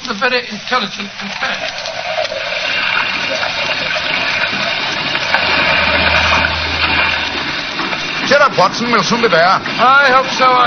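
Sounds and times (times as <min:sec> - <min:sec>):
speech: 0:00.1 - 0:02.4, 0:08.4 - 0:10.6
rushing and churning water of rough sea in hard wind: 0:02.0 - 0:10.6
small fishing boat engine drone: 0:04.9 - 0:08.3.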